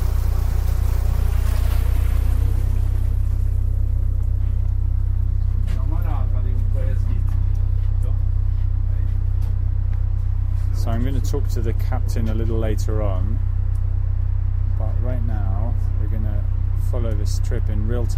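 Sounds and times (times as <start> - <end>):
water wash on a passenger ferry: 0.0 - 3.9
passenger ferry motor droning: 0.0 - 18.1
speech: 11.3 - 13.5, 16.2 - 18.1.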